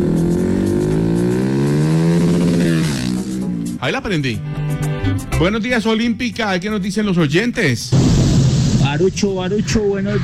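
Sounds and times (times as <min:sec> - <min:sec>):
Suzuki Bistrom 160 motorcycle engine revving: 0:00.0 - 0:03.8
speech: 0:03.8 - 0:08.1, 0:08.9 - 0:10.2.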